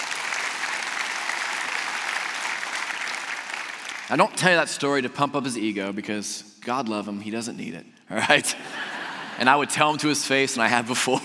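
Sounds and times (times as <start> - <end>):
crowd applauding in a full room: 0.0 - 4.4
speech: 4.1 - 11.2
laughter: 8.2 - 10.0, 10.6 - 11.2.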